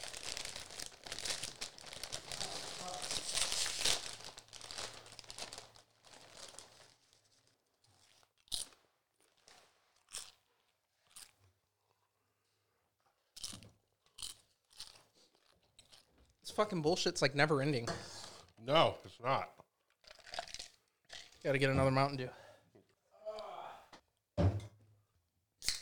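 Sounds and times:
tortilla chips crunched as they are bitten and chewed: 0.0 - 7.1, 7.9 - 11.4, 13.4 - 16.1
bag of regular tortilla chips crinkling and rustling as it is opened: 0.0 - 10.4
speech: 16.6 - 19.6, 21.4 - 22.4.

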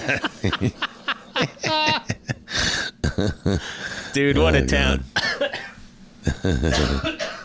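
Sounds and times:
speech: 0.0 - 1.8, 3.2 - 5.1, 6.4 - 7.1
laughter: 0.0 - 4.0, 6.2 - 7.2
person coughing with a throaty hacking fit: 5.2 - 7.4.

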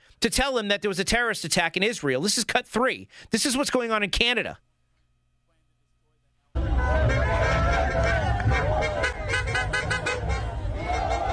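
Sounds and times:
speech: 0.2 - 4.7
crowd in the backs of pickup trucks in Canada shouting and cheering outdoors: 6.6 - 11.3
horn-like toots: 6.6 - 11.3
overlapping chatter: 6.6 - 11.3.

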